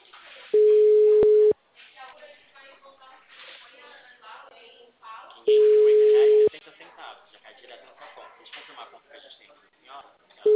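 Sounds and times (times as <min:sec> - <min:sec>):
faint telephone-line voices: 0:00.5 - 0:01.6, 0:05.5 - 0:06.7, 0:10.4 - 0:10.5
telephone call tone while placing a call: 0:00.6 - 0:01.6, 0:05.5 - 0:06.5.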